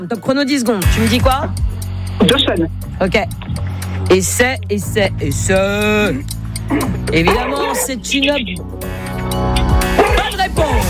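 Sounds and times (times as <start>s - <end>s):
speech: 0.0s - 8.9s
loud music track: 0.0s - 10.8s
dog yipping and barking: 6.7s - 7.9s, 9.9s - 10.8s.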